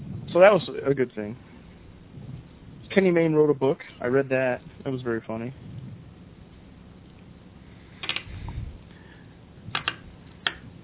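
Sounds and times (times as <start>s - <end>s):
low steady hum: 0.0s - 10.8s
speech: 0.4s - 1.5s, 2.9s - 5.7s
computer keyboard clicks: 8.0s - 8.3s, 9.7s - 10.6s.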